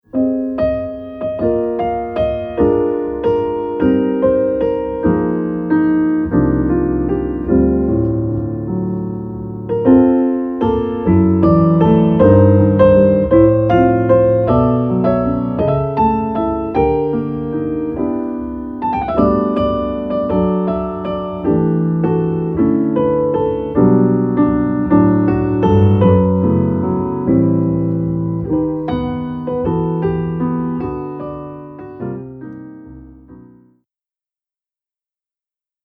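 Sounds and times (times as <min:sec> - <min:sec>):
solo piano: 0:00.0 - 0:33.9.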